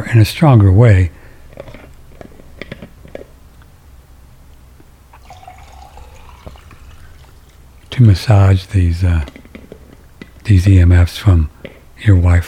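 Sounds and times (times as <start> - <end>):
speech: 0.0 - 1.2, 8.0 - 9.4, 10.4 - 12.4
sharp water drips and splashes: 5.2 - 8.0.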